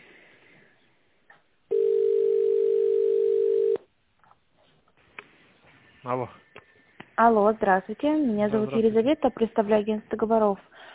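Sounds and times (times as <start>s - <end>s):
telephone ringback tone as an office call is transferred: 1.7s - 3.8s
speech: 6.1s - 6.5s, 7.2s - 10.9s.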